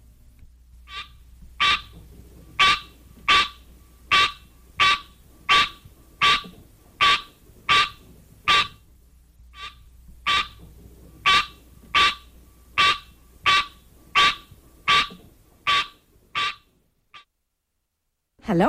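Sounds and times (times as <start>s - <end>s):
green tree frog calling with nasal honking notes: 0.8s - 8.8s, 9.5s - 10.6s, 11.2s - 17.3s
speech: 18.5s - 18.6s.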